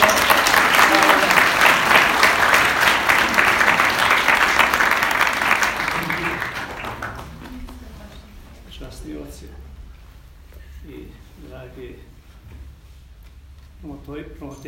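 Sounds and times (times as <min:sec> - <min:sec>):
audience applause at a book presentation in a church crypt: 0:00.0 - 0:08.0.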